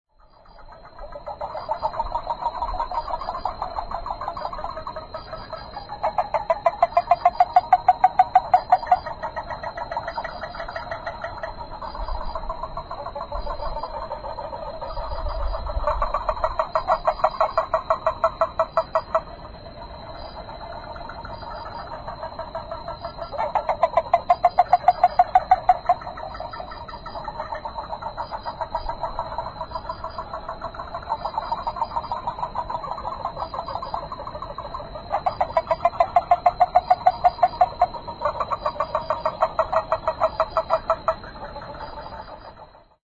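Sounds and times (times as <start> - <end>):
yaeyamaharabutigaeru frog calling: 0.2 - 43.0.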